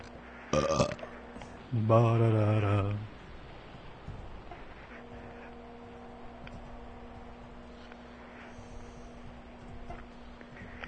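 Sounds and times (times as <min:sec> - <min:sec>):
quiet hum: 0:00.0 - 0:10.8
loud throaty burp: 0:00.6 - 0:01.1
speech: 0:01.7 - 0:03.1.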